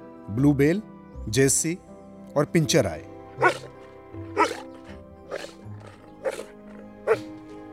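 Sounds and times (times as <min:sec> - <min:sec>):
speech: 0:00.3 - 0:04.3
dogs barking: 0:03.4 - 0:07.7.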